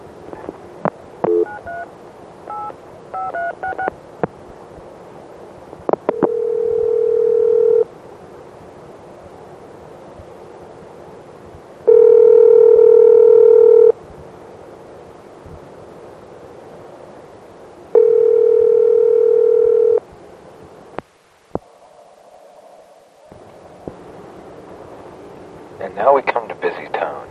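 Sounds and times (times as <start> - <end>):
telephone line dialing tones: 1.2 - 1.9, 2.5 - 3.9, 6.1 - 7.9, 11.9 - 13.9, 18.0 - 20.0.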